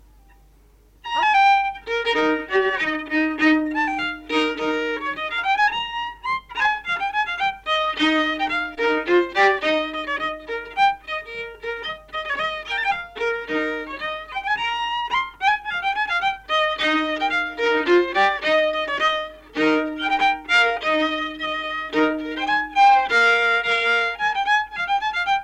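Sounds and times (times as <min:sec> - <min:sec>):
folk violin tune from Ruhnu: 0:00.0 - 0:25.4.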